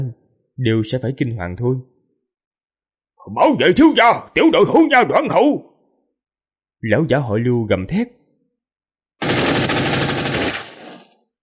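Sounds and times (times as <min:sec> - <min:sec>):
speech: 0:00.0 - 0:01.9, 0:03.2 - 0:05.7, 0:06.8 - 0:08.2
machine gun firing: 0:09.2 - 0:11.2.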